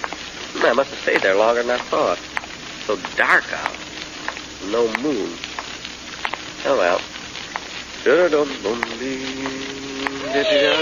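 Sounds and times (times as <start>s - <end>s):
faint hissing background: 0.0s - 10.8s
speech: 0.6s - 2.3s, 2.9s - 3.9s, 4.6s - 5.5s, 6.6s - 7.2s, 8.0s - 10.8s
cat meowing: 10.2s - 10.8s.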